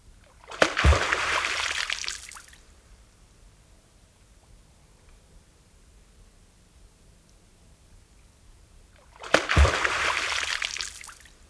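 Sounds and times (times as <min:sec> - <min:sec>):
alarmed American beaver slapping its broad tail on water at night: 0:00.3 - 0:02.6, 0:09.1 - 0:11.3.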